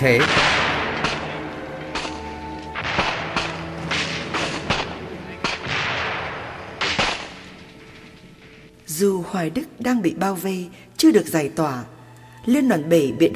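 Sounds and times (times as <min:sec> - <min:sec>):
speech: 0:00.0 - 0:00.6, 0:09.0 - 0:13.3
artillery shelling blasts: 0:00.1 - 0:07.6
gunfire cracks: 0:00.2 - 0:07.6.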